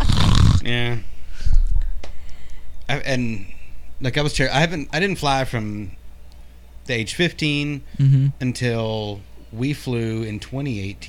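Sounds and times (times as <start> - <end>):
woman imitating a snore: 0.0 - 0.7, 8.0 - 8.4
speech: 3.0 - 6.0, 6.9 - 11.0.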